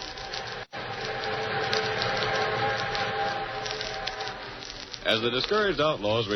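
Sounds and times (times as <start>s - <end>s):
train rumbling along the tracks: 0.0s - 5.1s
faint whistle-like tones: 0.0s - 5.8s
speech: 5.1s - 6.3s.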